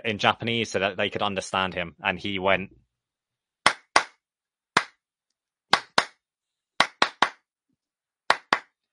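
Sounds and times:
speech: 0:00.0 - 0:02.8
hand claps in an irregular rhythmic pattern by a wrestler in the ring: 0:03.6 - 0:04.2, 0:04.8 - 0:05.0, 0:05.7 - 0:06.2, 0:06.8 - 0:07.5, 0:08.3 - 0:08.8.

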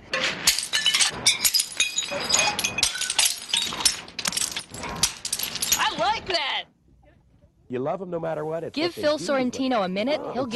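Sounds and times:
ceramic plate shards scattering and clinking: 0:00.0 - 0:06.4
thrift store ceramic plates smashed by employees: 0:00.0 - 0:06.4
speech: 0:07.7 - 0:10.5.

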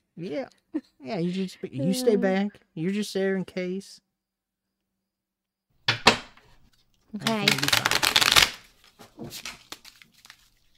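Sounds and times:
speech: 0:00.2 - 0:04.0, 0:07.1 - 0:08.0, 0:09.2 - 0:09.6
deck of playing cards being shuffled: 0:06.6 - 0:10.7.

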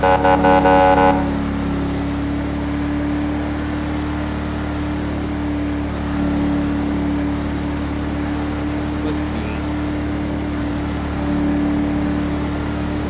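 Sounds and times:
speech: 0:00.0 - 0:01.3
police cruiser horn honk in a police-roleplay driving game: 0:00.0 - 0:01.5
steady low engine hum: 0:00.0 - 0:13.0.

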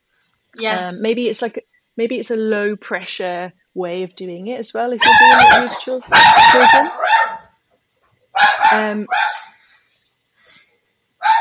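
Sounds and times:
speech: 0:00.5 - 0:07.4, 0:08.4 - 0:09.5
dog barking in another room: 0:05.0 - 0:07.6, 0:08.4 - 0:09.6, 0:11.2 - 0:11.3.

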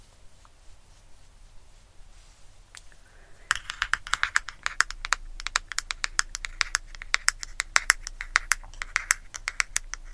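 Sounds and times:
soft low hum: 0:00.0 - 0:10.1
close-up tapping on makeup items: 0:03.4 - 0:10.1.

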